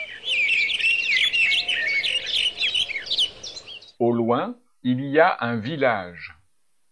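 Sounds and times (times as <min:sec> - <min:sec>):
birds singing in the countryside: 0:00.0 - 0:04.0
speech: 0:04.0 - 0:06.3.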